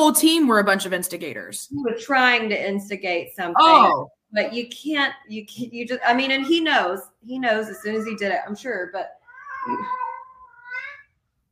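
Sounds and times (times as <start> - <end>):
speech: 0.0 - 10.1
cat meowing: 9.2 - 11.1.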